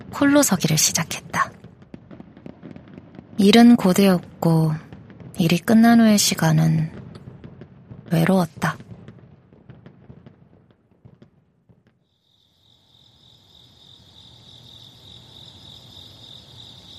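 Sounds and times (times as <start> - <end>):
sharp crackling pops: 0.0 - 12.1
speech: 0.2 - 1.6, 3.4 - 7.0, 8.1 - 8.8
chorus of crickets chirping: 12.1 - 16.9.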